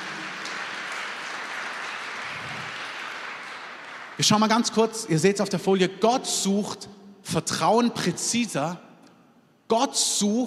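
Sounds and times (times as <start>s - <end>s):
crowd applauding: 0.0s - 4.8s
speech: 4.2s - 8.8s, 9.7s - 10.4s.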